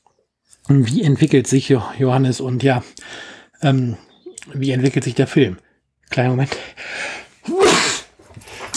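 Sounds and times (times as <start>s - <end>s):
speech: 0.7s - 7.0s
person sneezing at a microphone because of an itchy nose: 7.4s - 8.1s.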